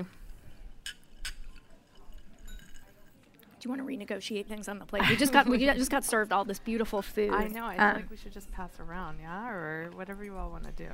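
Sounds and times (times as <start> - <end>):
low murmuring background: 0.0 - 10.9
glasses clinking in a toast at a dinner: 0.8 - 3.2
speech: 3.6 - 10.9.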